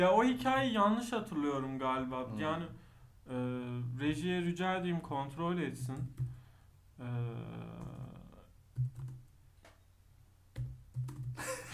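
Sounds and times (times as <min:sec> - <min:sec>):
speech: 0:00.0 - 0:06.3, 0:07.0 - 0:07.9
typing on a computer keyboard: 0:08.8 - 0:09.2, 0:10.6 - 0:11.4.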